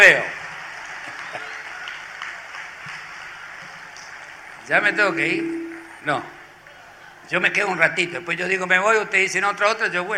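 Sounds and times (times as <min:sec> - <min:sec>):
speech: 0:00.0 - 0:00.4, 0:04.7 - 0:06.4, 0:07.3 - 0:10.1
audience applauding: 0:00.0 - 0:05.8.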